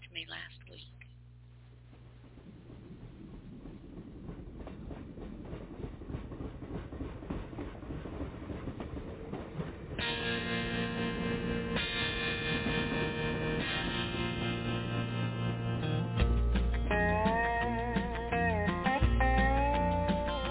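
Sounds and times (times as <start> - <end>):
rumbling clattering train effect in a recorded song: 1.8 - 20.4
sustained instrumental chords: 10.2 - 20.4.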